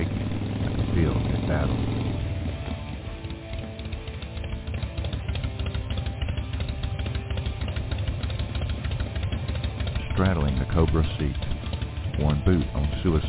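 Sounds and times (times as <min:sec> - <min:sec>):
Panhead motorcycle dry clutch rattle: 0:00.0 - 0:13.2
Panhead motorcycle engine idling: 0:00.0 - 0:13.2
speech: 0:12.5 - 0:13.2.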